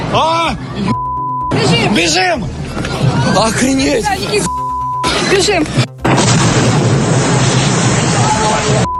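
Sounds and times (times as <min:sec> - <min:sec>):
speech: 0:00.1 - 0:01.1, 0:01.9 - 0:04.6, 0:05.3 - 0:06.2
explosions and bangs from strikes by uncrewed boats on a port and seafront: 0:05.7 - 0:08.9.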